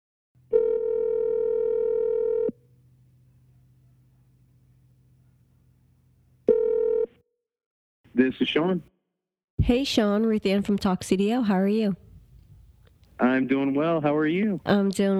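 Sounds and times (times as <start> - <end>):
electronic phone ringback tone: 0.5 - 2.6, 6.4 - 7.2
faint phone line hum: 1.0 - 6.5, 11.7 - 15.1
speech: 8.2 - 9.0, 9.6 - 12.0, 13.2 - 15.1.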